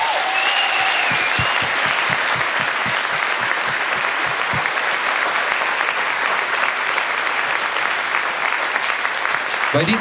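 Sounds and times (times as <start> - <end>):
sustained audience applause: 0.0 - 10.0
brief whistle: 0.3 - 2.2
speech: 9.7 - 10.0.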